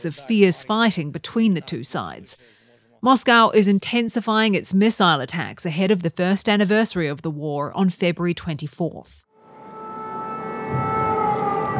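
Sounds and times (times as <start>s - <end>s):
speech: 0.0s - 9.2s
air raid sirens wailing across an open space: 9.3s - 11.7s.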